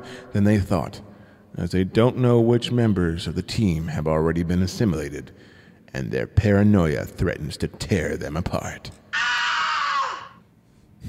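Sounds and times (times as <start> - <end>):
speech: 0.0 - 9.0
person screaming: 9.1 - 10.4.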